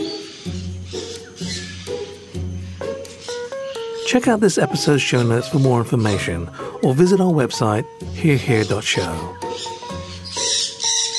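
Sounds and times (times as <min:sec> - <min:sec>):
bird chirps and squeaks in a parrot aviary: 0:00.0 - 0:04.4, 0:08.5 - 0:11.1
low droning bird calls in a parrot aviary: 0:00.0 - 0:11.1
speech: 0:04.1 - 0:09.7.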